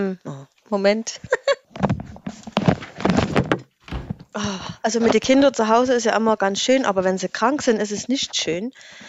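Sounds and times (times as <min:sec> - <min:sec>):
speech: 0:00.0 - 0:01.9, 0:04.4 - 0:09.0
laughter: 0:01.2 - 0:01.7
dull thumps and knocking clatters of door handling: 0:01.7 - 0:05.8
door being pushed shut: 0:03.5 - 0:04.3.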